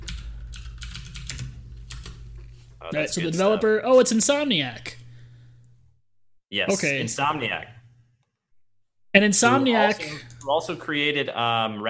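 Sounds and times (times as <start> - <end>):
typing on a computer keyboard: 0.0 - 2.2
speech: 2.8 - 5.0, 6.5 - 7.8, 9.2 - 11.8.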